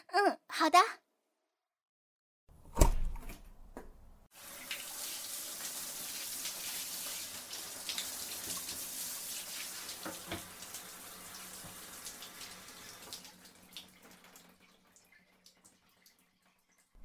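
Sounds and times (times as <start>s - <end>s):
speech: 0.1s - 1.0s
shower water running with hissing spray: 4.3s - 16.9s.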